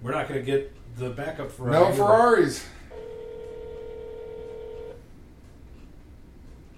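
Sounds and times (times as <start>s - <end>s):
speech: 0.0s - 2.8s
low hiss: 0.0s - 6.7s
phone keypad tone as a number is dialed: 2.9s - 5.0s.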